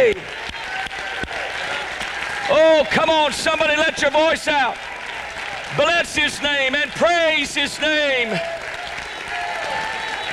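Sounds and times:
speech: 0.0s - 0.4s, 2.5s - 4.9s, 5.7s - 8.6s
audience clapping hands: 0.0s - 10.3s.

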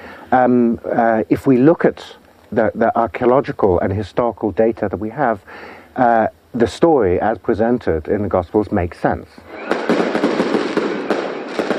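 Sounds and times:
speech: 0.3s - 9.7s
fireworks exploding over a town square: 9.5s - 11.7s.

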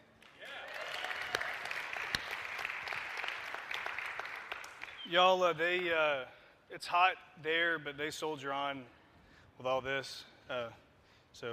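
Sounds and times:
crowd applauding a band: 0.2s - 5.1s
speech: 5.1s - 9.0s, 9.6s - 10.8s.

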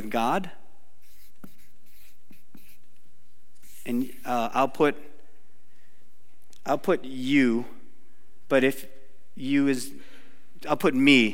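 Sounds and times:
speech: 0.1s - 0.6s, 3.9s - 5.1s, 6.6s - 7.8s, 8.5s - 11.3s
soft scratching of circles drawn by hand: 1.0s - 2.9s, 3.6s - 4.3s.

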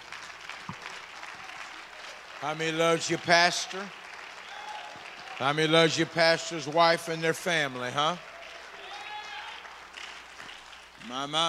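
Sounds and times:
audience clapping hands in praise: 0.0s - 11.4s
speech: 2.4s - 4.0s, 5.4s - 8.3s, 11.0s - 11.4s.

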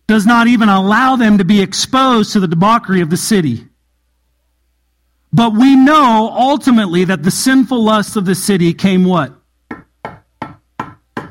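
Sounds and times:
speech: 0.1s - 3.7s, 5.3s - 9.4s
firm knocking on a door: 9.7s - 11.3s.

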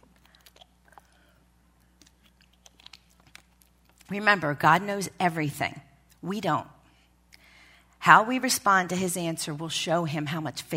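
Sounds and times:
person sipping water: 0.0s - 4.1s
speech: 4.1s - 6.8s, 8.0s - 10.7s.

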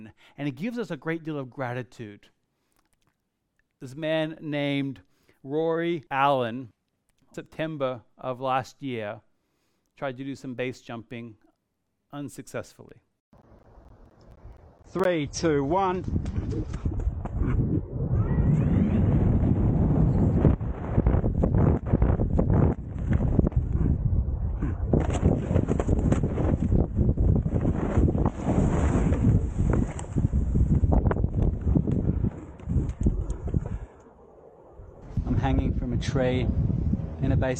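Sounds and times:
speech: 0.0s - 2.4s, 3.8s - 9.3s, 10.0s - 11.4s, 12.1s - 13.1s, 14.9s - 16.9s, 36.2s - 36.7s, 37.4s - 37.5s
strong wind buffeting against the microphone: 15.2s - 34.0s, 34.8s - 37.5s.

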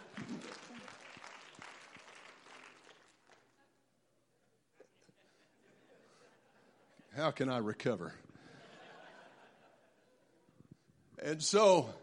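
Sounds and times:
crowd clapping: 0.0s - 3.6s
laughter: 4.8s - 7.2s, 8.4s - 10.5s
speech: 7.2s - 8.3s, 11.3s - 12.0s.

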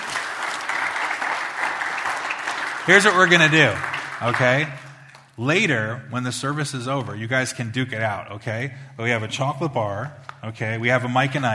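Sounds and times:
audience applause at a church service: 0.0s - 5.3s
speech: 2.9s - 4.8s, 5.4s - 11.5s.

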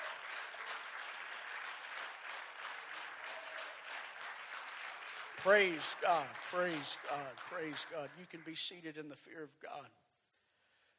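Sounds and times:
congregation clapping hands: 0.0s - 9.0s
speech: 5.4s - 10.0s.

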